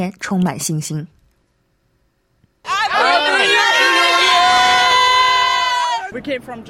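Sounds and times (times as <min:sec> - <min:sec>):
speech: 0:00.0 - 0:01.2, 0:06.2 - 0:06.6
crowd cheering and shouting at New Year fireworks around Sydney Harbour: 0:02.6 - 0:06.2.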